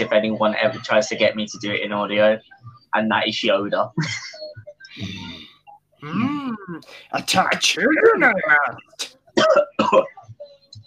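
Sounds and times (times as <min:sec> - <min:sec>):
speech: 0:00.0 - 0:04.4, 0:06.0 - 0:10.2
quiet breathy sounds: 0:04.8 - 0:07.2
voice straining: 0:04.9 - 0:07.1
person coughing raspily: 0:09.4 - 0:10.1.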